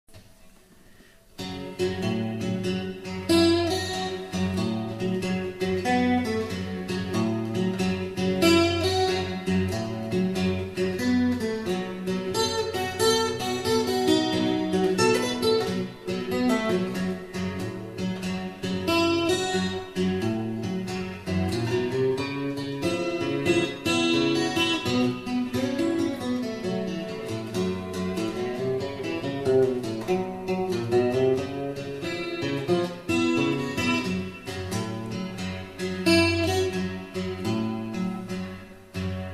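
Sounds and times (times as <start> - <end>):
delta blues fingerstyle playing: 1.0 - 39.3.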